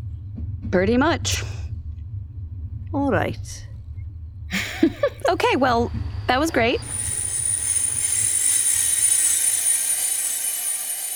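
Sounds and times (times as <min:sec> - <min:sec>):
low rumbling of braking train: 0:00.0 - 0:11.1
speech: 0:00.7 - 0:01.6, 0:02.9 - 0:03.7, 0:04.8 - 0:07.1
train braking hard with wheel squeal: 0:05.8 - 0:11.1.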